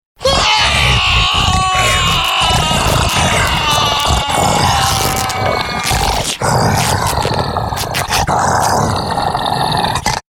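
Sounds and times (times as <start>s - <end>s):
man screaming as savage monster attacks: 0.2s - 7.2s
savage monster attacking: 0.2s - 10.2s
clothes tearing: 0.9s - 8.8s.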